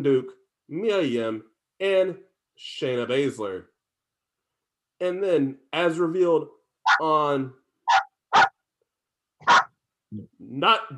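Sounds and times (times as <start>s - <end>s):
speech: 0.0s - 3.7s, 5.0s - 7.6s, 9.4s - 10.9s
dog barking: 6.9s - 7.1s, 7.9s - 8.6s, 9.4s - 9.7s.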